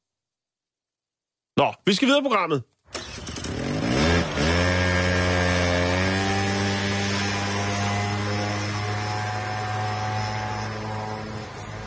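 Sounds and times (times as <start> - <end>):
speech: 1.6 - 2.7
moped engine buzzing and revving: 2.9 - 11.8.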